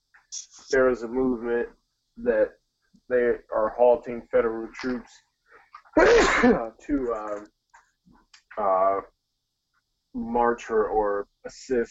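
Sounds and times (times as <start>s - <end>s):
speech: 0.3s - 5.2s, 6.0s - 7.5s, 8.6s - 9.1s, 10.1s - 11.8s
loud explosive sneeze: 5.9s - 6.7s.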